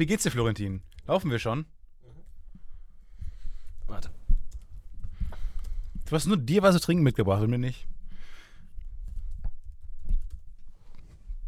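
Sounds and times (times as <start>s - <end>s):
speech: 0.0s - 1.8s, 6.1s - 8.0s
computer keyboard typing while writing an email: 9.6s - 10.4s.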